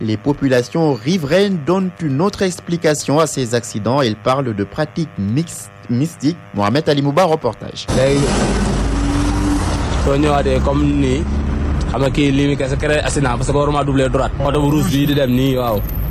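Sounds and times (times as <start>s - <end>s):
speech: 0.0s - 8.8s, 10.0s - 16.0s
taxi engine and road noise on a dangerous road: 7.9s - 16.1s.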